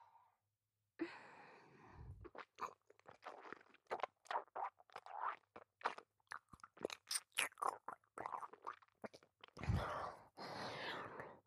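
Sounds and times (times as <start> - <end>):
soft breathy sighs: 1.0 - 2.2, 9.6 - 11.4
wet chewing mouth sounds: 2.2 - 9.6.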